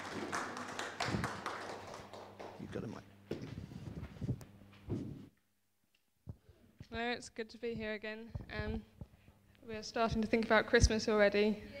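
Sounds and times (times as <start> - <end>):
sparse audience applause: 0.0 - 3.0
speech: 7.0 - 8.9, 9.7 - 11.7.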